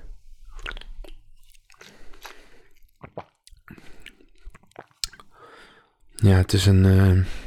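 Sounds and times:
person sipping a seedy blueberry drink: 0.4 - 5.4
wet squishing mouth noises: 0.4 - 5.4
speech: 6.2 - 7.4.

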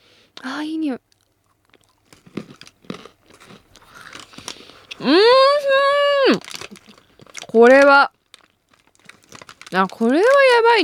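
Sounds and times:
speech: 0.6 - 1.1, 5.0 - 5.4, 7.6 - 8.1, 9.7 - 10.8
crunching and chewing macadamia nuts and cheese in one mouthful: 1.1 - 5.0, 6.3 - 10.6.

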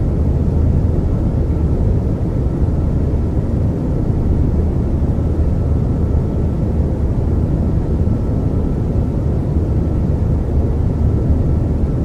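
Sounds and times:
private jet airplane cabin deep rumble: 0.0 - 12.0.

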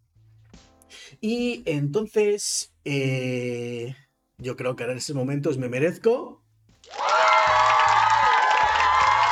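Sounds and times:
speech: 1.1 - 6.4
crowd cheering with whoops and shouts: 6.8 - 9.2.

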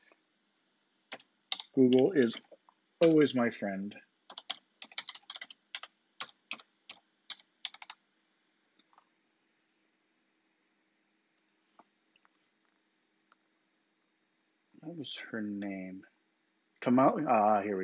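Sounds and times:
steady low hum: 0.0 - 17.8
computer keyboard clicks of someone typing a search: 1.1 - 3.2, 4.3 - 8.0
speech: 1.8 - 4.1, 15.0 - 16.2, 16.8 - 17.8.

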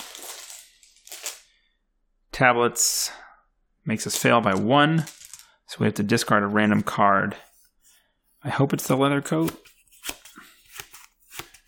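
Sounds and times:
two playing cards shuffled by hand: 0.0 - 1.5, 8.8 - 11.6
speech: 2.4 - 3.2, 3.9 - 7.5, 8.4 - 10.2.

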